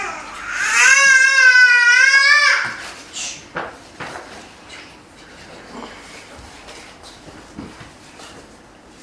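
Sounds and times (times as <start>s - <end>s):
baby wailing and fussing: 0.0s - 2.8s.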